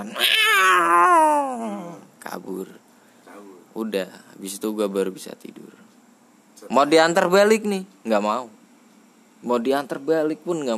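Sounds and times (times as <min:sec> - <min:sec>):
long drawn-out cat meow: 0:00.0 - 0:01.8
speech: 0:03.4 - 0:05.9, 0:06.6 - 0:08.6, 0:09.4 - 0:10.7.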